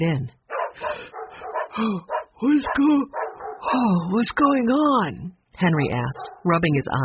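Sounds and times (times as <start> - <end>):
speech: 0.0 - 1.0, 1.8 - 7.0
dogs barking: 0.5 - 3.8, 6.1 - 6.6.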